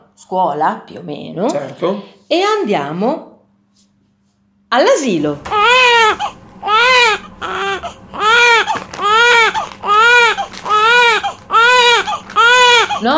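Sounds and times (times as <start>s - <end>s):
speech: 0.2s - 3.3s, 4.7s - 6.3s
baby wailing loudly: 5.4s - 13.1s.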